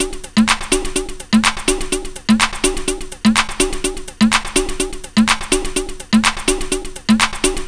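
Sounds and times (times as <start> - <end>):
digital MPC drum breaks: 0.0 - 7.6.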